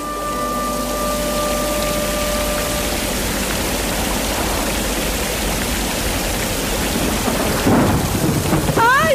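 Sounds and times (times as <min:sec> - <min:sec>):
heavy rain: 0:00.0 - 0:09.1
deep thunder rumbling and rolling: 0:00.5 - 0:09.1
sharp thunder crack: 0:07.0 - 0:09.1.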